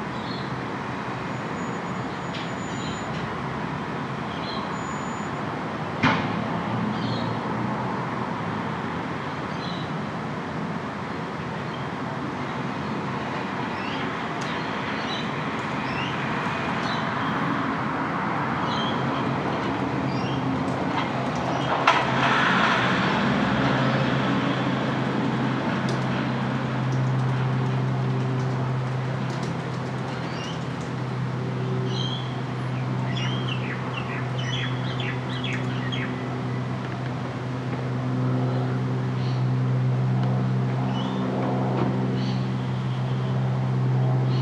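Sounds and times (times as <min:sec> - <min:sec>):
steady murmur of road traffic: 0:00.0 - 0:44.4
low engine-like drone: 0:19.3 - 0:44.4.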